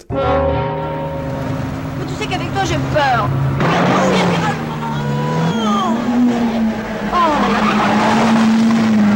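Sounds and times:
speech: 0.1s - 0.4s, 2.3s - 4.6s
car engine droning: 0.8s - 9.1s
car tires squealing through turns: 1.1s - 9.1s.

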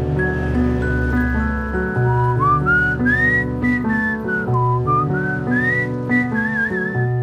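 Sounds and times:
instrumental backing: 0.0s - 7.2s
people whistling a tune: 2.2s - 7.2s.

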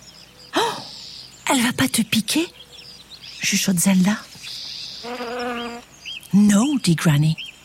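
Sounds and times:
speech: 1.5s - 2.6s, 3.4s - 5.3s, 6.3s - 7.4s
bee buzzing along a person's arm: 5.0s - 5.9s.

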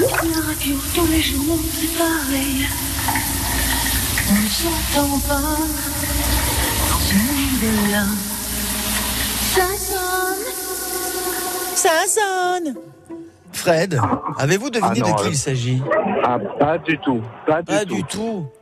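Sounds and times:
female singer singing a wandering melody: 0.0s - 2.9s, 4.2s - 13.0s
shower spraying water in a bathroom: 0.0s - 12.6s
speech: 0.6s - 6.4s, 7.1s - 8.3s, 9.6s - 10.6s, 11.8s - 18.6s.

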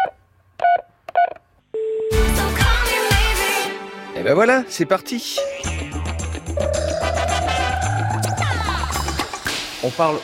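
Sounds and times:
steady telephone tone: 1.7s - 2.2s
music: 2.1s - 10.2s
speech: 4.2s - 5.9s, 9.8s - 10.2s.

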